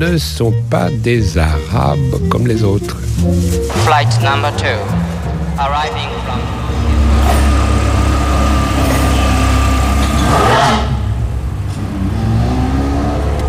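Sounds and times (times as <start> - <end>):
speech: 0.0 - 6.6
sports car engine revving: 3.6 - 13.4.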